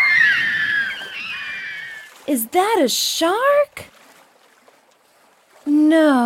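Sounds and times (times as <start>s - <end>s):
high piercing scream: 0.0s - 2.2s
speech: 2.3s - 3.9s, 5.8s - 6.2s.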